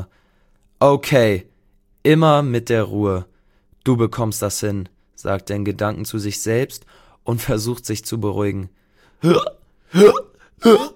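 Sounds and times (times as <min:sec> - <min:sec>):
speech: 0:00.8 - 0:10.9
cartoon dinosaur hiccups voiced by a performer: 0:09.2 - 0:10.9.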